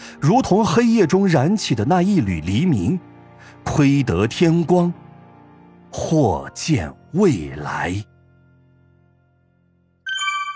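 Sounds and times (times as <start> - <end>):
speech: 0.2 - 5.0, 5.9 - 8.1
bright electronic ding chime: 10.1 - 10.5.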